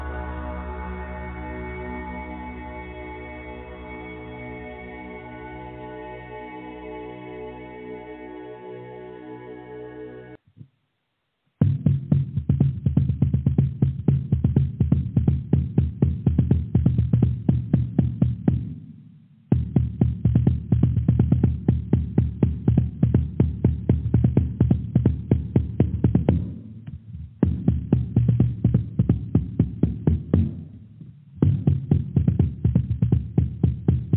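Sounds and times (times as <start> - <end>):
low drone: 0.0 - 10.4
fast even drumming with deep thuds: 11.6 - 34.1.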